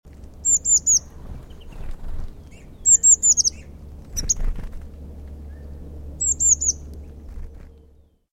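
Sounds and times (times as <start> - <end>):
faint low rumble: 0.1 - 8.3
Eurasian blue tit Cyanistes caeruleus calling: 0.4 - 4.5, 5.5 - 6.9.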